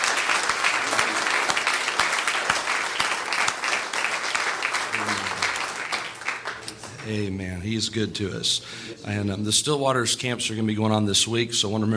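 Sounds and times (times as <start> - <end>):
audience clapping hands in sustained dense applause: 0.0 - 7.3
speech: 7.1 - 11.9.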